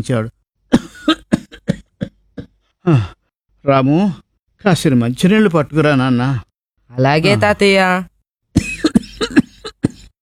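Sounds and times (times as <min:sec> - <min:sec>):
speech: 0:00.0 - 0:00.4, 0:02.9 - 0:09.4
elderly man coughing from a dry throat: 0:00.7 - 0:03.2, 0:08.6 - 0:10.1.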